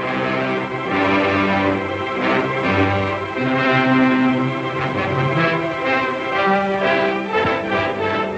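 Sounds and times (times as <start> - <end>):
film studio fanfare with brassy orchestral chords: 0.0 - 8.3.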